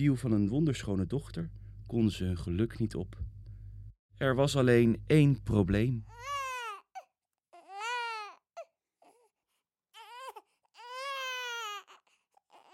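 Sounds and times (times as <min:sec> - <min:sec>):
speech: 0:00.0 - 0:03.3, 0:04.2 - 0:06.4
baby crying: 0:06.1 - 0:12.7.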